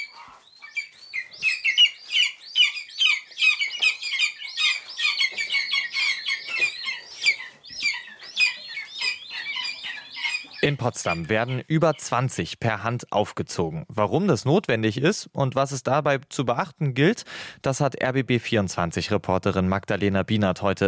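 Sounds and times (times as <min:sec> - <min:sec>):
hungry hand-reared lesser spotted eagle chicks calling loudly at a rearing station near Potsdam: 0:00.0 - 0:12.5
speech: 0:10.6 - 0:20.8.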